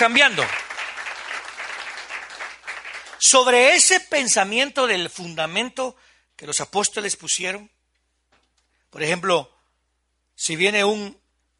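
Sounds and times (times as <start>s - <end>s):
speech: 0.0s - 0.6s, 3.2s - 7.8s, 8.9s - 9.6s, 10.4s - 11.2s
crowd applauding loudly: 0.0s - 3.6s.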